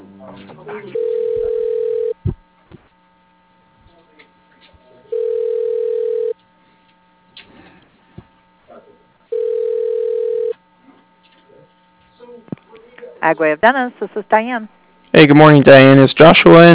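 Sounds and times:
speech: 0.4 - 1.5, 13.3 - 16.7
telephone ringback tone as a call is transferred: 1.0 - 2.2, 5.1 - 6.4, 9.3 - 10.6.

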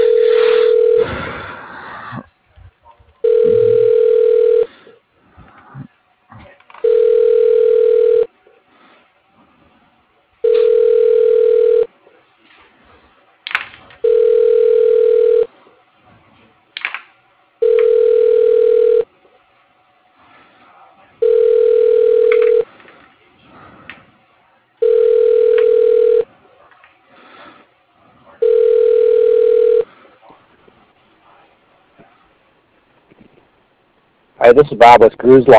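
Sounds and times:
outgoing telephone call ringback tone: 0.0 - 1.2, 3.2 - 4.7, 6.8 - 8.3, 10.4 - 11.9, 14.0 - 15.5, 17.6 - 19.1, 21.2 - 22.7, 24.8 - 26.3, 28.4 - 29.9
speech: 34.5 - 35.5.

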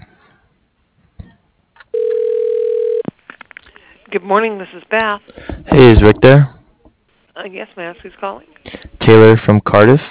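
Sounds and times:
telephone ringing tone while a call is transferred: 1.9 - 3.1
speech: 4.1 - 6.6, 7.4 - 10.0.

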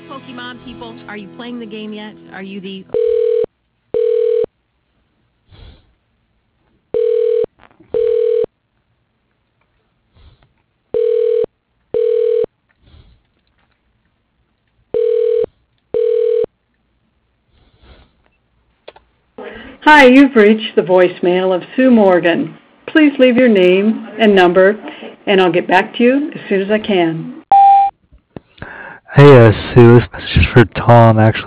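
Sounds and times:
speech: 0.1 - 3.4, 19.9 - 27.4, 29.2 - 31.4
telephone ringback while a call is being transferred: 2.9 - 4.5, 6.9 - 8.5, 11.0 - 12.5, 14.9 - 16.5, 27.5 - 27.9.

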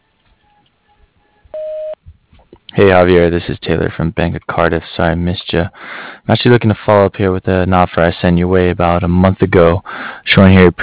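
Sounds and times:
faint hiss: 0.0 - 10.8
voicemail tone beep: 0.4 - 2.0
speech: 2.8 - 10.8.

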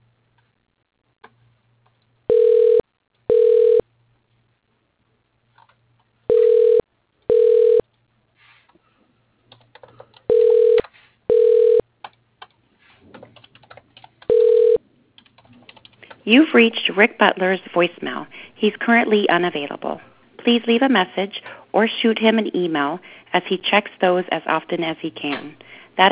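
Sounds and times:
automated phone system ringing beeps while placing a call: 2.3 - 3.8, 6.3 - 7.8, 10.3 - 11.8, 14.3 - 14.8
faint keyboard-like clicking: 9.5 - 10.3, 12.0 - 14.4, 15.2 - 16.2
speech: 16.3 - 26.1.

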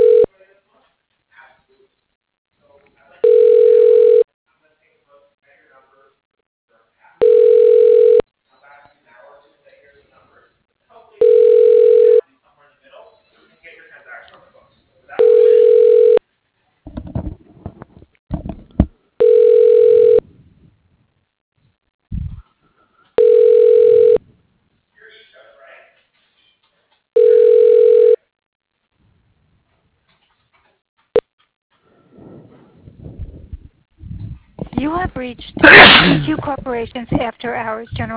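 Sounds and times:
telephone ringback tone while transferring call: 0.0 - 0.3, 3.2 - 4.3, 7.2 - 8.2, 11.2 - 12.2, 15.2 - 16.2, 19.2 - 20.2, 23.2 - 24.2, 27.2 - 28.2
speech: 35.2 - 38.1.

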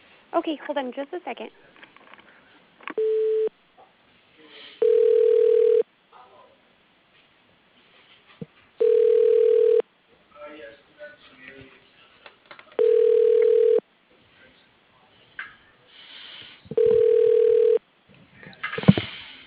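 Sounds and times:
speech: 0.3 - 1.8
phone ringback tone as call is transferred to voicemail: 3.0 - 3.5, 4.8 - 5.8, 8.8 - 9.8, 12.8 - 13.8, 16.8 - 17.8
faint phone line noise and clicks: 8.8 - 9.8, 12.8 - 13.8, 16.7 - 17.8.

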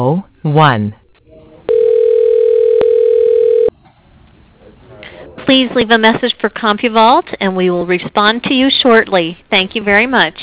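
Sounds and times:
speech: 0.0 - 1.0, 5.5 - 10.4
steady telephone tone from an automated company phone directory dialing a voicemail extension: 1.7 - 3.7.

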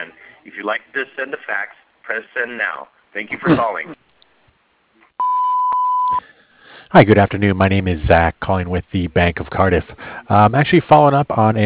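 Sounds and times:
speech: 0.0 - 4.0, 6.9 - 11.6
answering machine beep: 5.2 - 6.2.

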